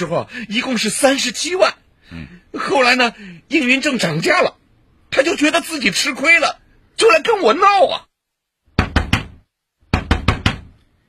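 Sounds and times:
speech: 0.0 - 4.5, 5.1 - 8.1
firm knocking on a door: 8.7 - 10.8.

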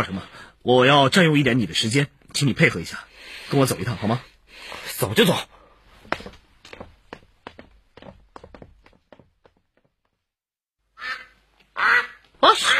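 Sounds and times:
speech: 0.0 - 6.4
domestic duck quacking: 11.0 - 12.7.

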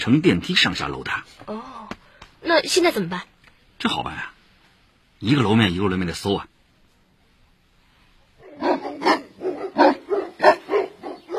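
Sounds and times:
speech: 0.0 - 4.4, 5.2 - 6.5
police dogs barking: 8.3 - 11.3.

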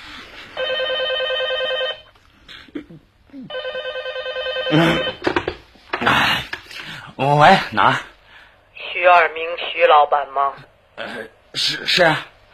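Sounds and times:
telephone ringing in long buzzing bursts: 0.6 - 2.1, 3.5 - 5.5
speech: 4.7 - 5.1, 7.2 - 8.1, 9.1 - 12.3
clattering and rustling noises: 5.1 - 6.7.

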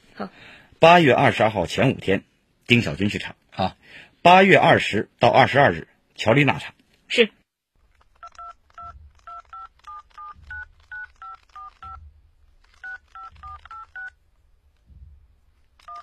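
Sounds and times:
speech: 0.2 - 7.4
telephone keypad tones: 8.2 - 12.0, 12.8 - 14.2, 15.8 - 16.0
low thumps: 8.8 - 9.4, 10.2 - 11.1, 11.8 - 12.6, 13.2 - 15.8.

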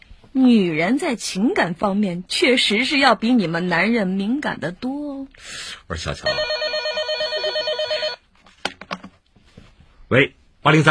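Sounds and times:
speech: 0.4 - 6.6, 10.1 - 10.8
telephone ringing with a rapid warbling electronic ring: 6.2 - 8.2.

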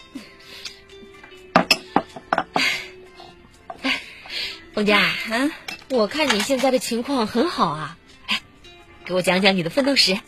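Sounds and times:
glasses clinking in a toast over a seafood dinner: 1.5 - 2.6
soft table clatter at a seafood dinner: 1.6 - 2.6
speech: 4.8 - 8.0, 9.1 - 10.2.

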